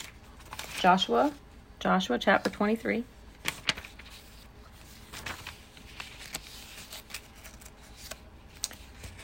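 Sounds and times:
thin humid Bible pages that stick together being turned: 0.0 - 1.3, 3.4 - 9.2
speech: 0.8 - 3.2.

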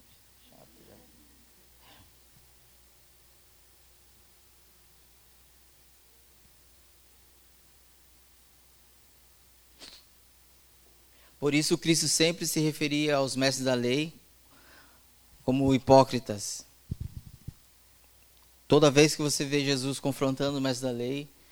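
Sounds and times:
steady hiss: 0.0 - 21.4
short breathy sniffles: 9.8 - 10.1
speech: 11.4 - 14.2, 15.5 - 16.7, 18.7 - 21.4.

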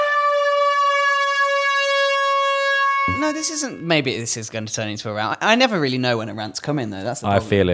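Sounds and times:
steady siren tone: 0.0 - 3.8
speech: 3.2 - 7.7.

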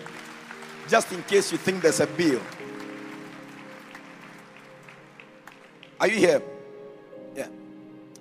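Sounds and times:
crowd applauding: 0.0 - 6.4
speech: 0.9 - 2.6, 6.0 - 6.5, 7.4 - 7.6.

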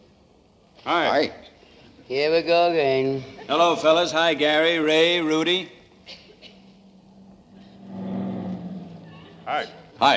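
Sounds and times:
speech: 0.8 - 1.5, 2.1 - 6.2, 9.5 - 10.1
heavy truck driving past: 6.5 - 10.1.

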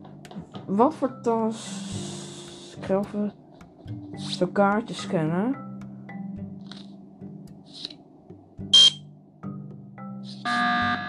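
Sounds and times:
speech: 0.7 - 2.0, 2.8 - 5.6
emergency meeting alarm from a video game: 8.7 - 9.0, 10.4 - 11.0.

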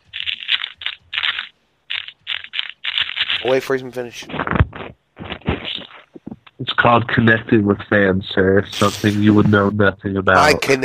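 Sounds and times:
crunching and crackling of something crisp in the mouth: 0.0 - 6.6
speech: 3.4 - 4.5, 6.8 - 10.8.

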